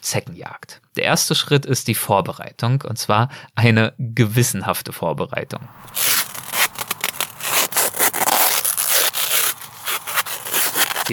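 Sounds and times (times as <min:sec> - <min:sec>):
speech: 0:00.1 - 0:06.1
adhesive tape pulled off the roll and wrapped around a leg: 0:05.8 - 0:11.1.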